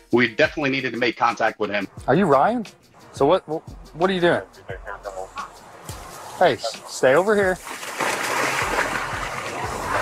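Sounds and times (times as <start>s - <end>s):
speech: 0.1s - 5.2s, 6.4s - 7.8s
man splashing about in a canal after jumping in: 5.5s - 10.0s.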